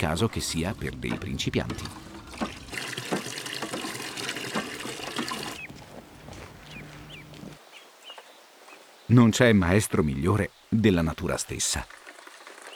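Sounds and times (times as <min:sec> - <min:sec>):
speech: 0:00.0 - 0:02.2, 0:09.1 - 0:12.0
water gushing into a trough at a farmstead: 0:00.0 - 0:05.7, 0:11.6 - 0:12.7
water trickling into a trough: 0:00.0 - 0:07.5, 0:11.1 - 0:12.7.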